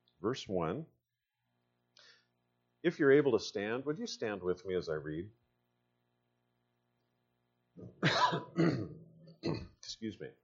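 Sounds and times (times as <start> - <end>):
speech: 0.2 - 1.0, 2.8 - 5.4, 7.8 - 10.4
harsh coughs: 7.8 - 9.8.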